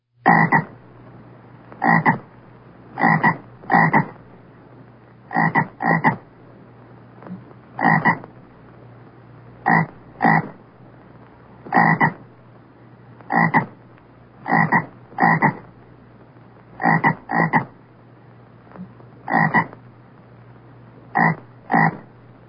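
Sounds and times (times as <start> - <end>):
faint steady background hum: 0.0 - 22.4
frog croaking: 0.2 - 0.8, 1.8 - 2.3, 3.0 - 4.2, 5.3 - 6.3, 7.3 - 8.3, 9.6 - 10.6, 11.6 - 12.3, 13.2 - 13.8, 14.4 - 15.7, 16.8 - 17.8, 18.8 - 19.8, 21.1 - 22.1.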